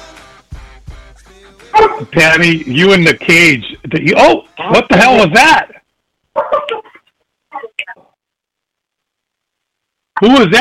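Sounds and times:
hound dog barking loudly: 1.7 - 2.1, 6.4 - 6.8
speech: 2.0 - 5.8, 10.2 - 10.5.

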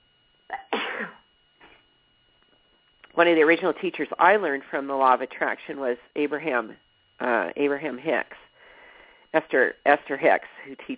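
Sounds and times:
person sneezing: 0.5 - 1.8
speech: 3.2 - 8.4, 9.3 - 10.9.

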